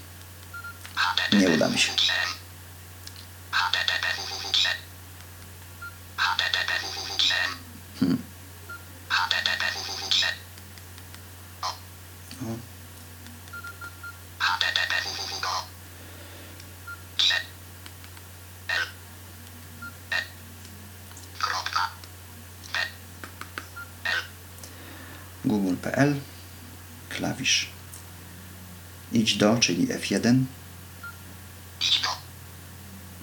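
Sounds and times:
low steady hum: 0.0 - 33.2
mobile phone keypad beeps: 0.5 - 0.8, 13.5 - 14.2
speech: 1.3 - 2.4, 26.0 - 26.3, 29.2 - 30.6.

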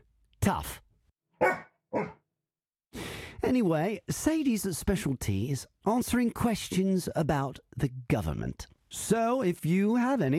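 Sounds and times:
speech: 0.5 - 0.8, 3.5 - 10.3
dog barking: 1.4 - 2.2.

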